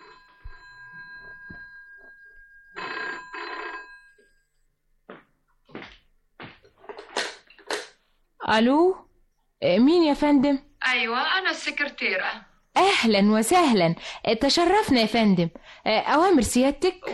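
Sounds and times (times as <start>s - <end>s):
telephone bell ringing: 0.0s - 4.6s
speech: 8.5s - 9.0s, 9.6s - 17.1s.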